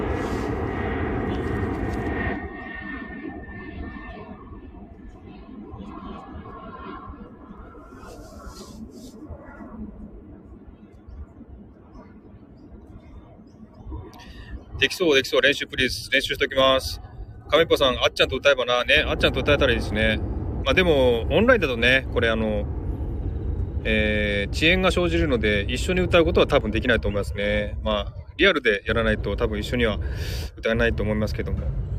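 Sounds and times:
airplane passing overhead: 0.0 - 31.9
speech: 14.8 - 22.8, 23.8 - 31.9.

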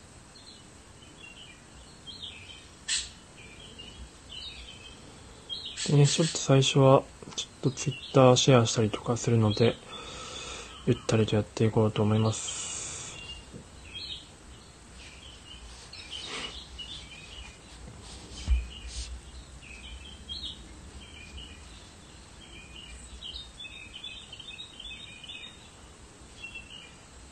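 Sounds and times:
small birds chirping and tweeting: 0.0 - 27.3
soft outdoor hiss: 0.0 - 27.3
speech: 5.9 - 9.9, 10.9 - 12.6
brief low thump: 18.4 - 18.9.

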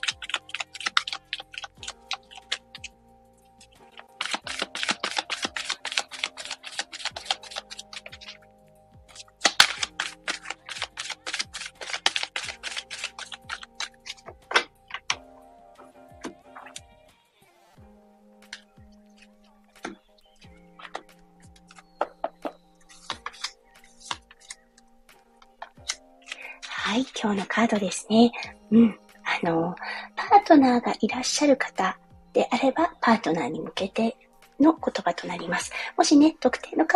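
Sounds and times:
deck of cards shuffled during a card reading: 0.0 - 3.0, 3.6 - 8.5, 9.1 - 15.2, 18.4 - 27.9
speech: 27.2 - 29.8, 30.5 - 36.9.

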